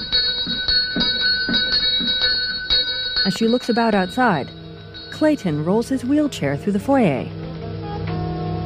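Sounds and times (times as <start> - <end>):
door bell rung by bell pull: 0.0 - 6.3
speech: 3.3 - 4.6, 5.2 - 7.4.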